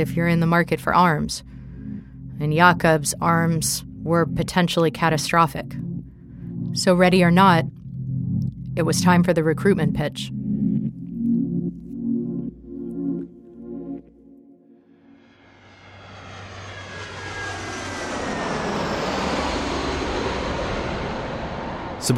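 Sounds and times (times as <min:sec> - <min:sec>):
speech: 0:00.0 - 0:01.6, 0:02.4 - 0:05.9, 0:06.7 - 0:07.8, 0:08.8 - 0:10.4
airplane in flight engine roar with high whine: 0:00.0 - 0:14.2, 0:14.9 - 0:22.1
rhythmic droning: 0:00.0 - 0:18.5.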